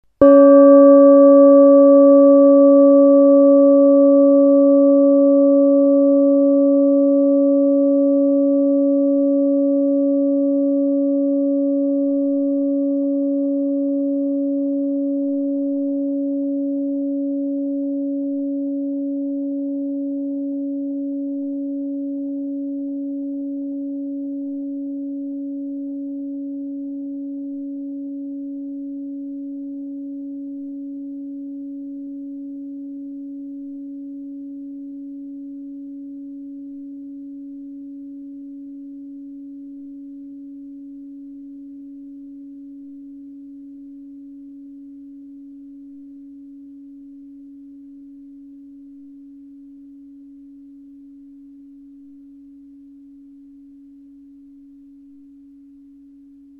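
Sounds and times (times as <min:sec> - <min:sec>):
oblong gong: 0:00.2 - 0:26.9.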